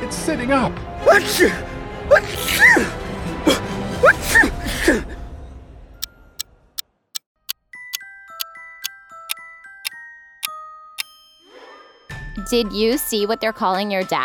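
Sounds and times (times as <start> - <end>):
speech: 0.2 - 5.2, 12.5 - 14.2
person sneezing: 2.2 - 2.9.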